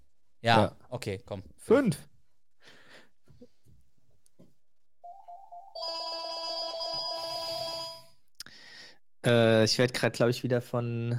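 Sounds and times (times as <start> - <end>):
speech: 0.4 - 2.8, 9.2 - 11.1
landline telephone ringing with a warbling trill: 5.0 - 8.1.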